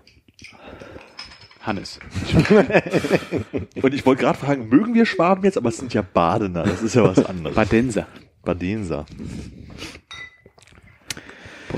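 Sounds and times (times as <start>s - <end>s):
speech: 1.6s - 10.0s
laughter: 2.1s - 7.9s
beer glasses clinking in a toast: 10.1s - 10.6s.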